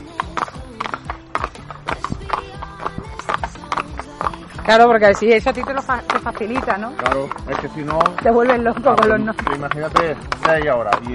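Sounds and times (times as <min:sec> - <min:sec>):
horse hooves clip-clopping on a trail ride: 0:00.0 - 0:11.1
speech: 0:04.7 - 0:11.1.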